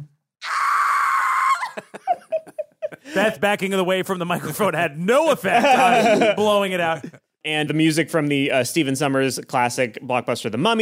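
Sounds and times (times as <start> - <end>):
voice imitating a roller coaster rider screaming: 0.4 - 2.0
laughter: 1.6 - 3.5, 5.4 - 7.3
speech: 3.1 - 10.8.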